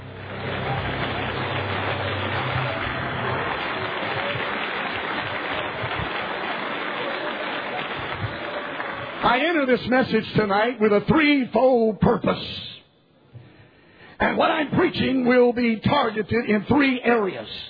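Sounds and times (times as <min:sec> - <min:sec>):
low hum: 0:00.0 - 0:04.6
church audience clapping hands in praise: 0:00.0 - 0:10.0
speech: 0:09.3 - 0:12.7, 0:14.2 - 0:17.6.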